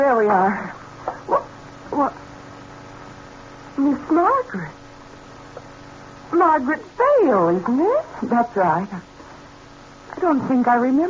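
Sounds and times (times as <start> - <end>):
speech: 0.0 - 2.2, 3.8 - 4.8, 6.3 - 9.1, 10.2 - 11.0
dog barking: 1.3 - 1.6.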